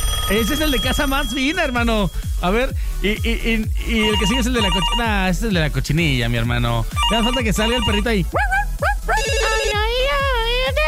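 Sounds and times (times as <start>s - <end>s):
melodic electronic ringtone signalling an incoming call: 0.0s - 5.4s, 6.9s - 8.3s, 9.1s - 10.2s
speech: 0.3s - 8.9s
steady pulsing low beat: 0.9s - 10.8s.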